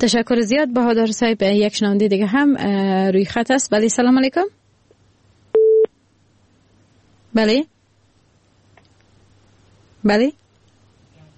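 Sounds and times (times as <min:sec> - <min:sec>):
speech: 0:00.0 - 0:04.6, 0:07.4 - 0:07.7, 0:10.0 - 0:10.4
telephone busy tone after a dropped call: 0:05.5 - 0:05.9.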